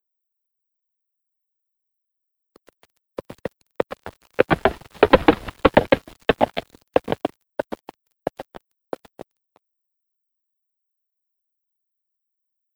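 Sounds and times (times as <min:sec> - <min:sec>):
hooves of a galloping horse: 0:02.6 - 0:09.2.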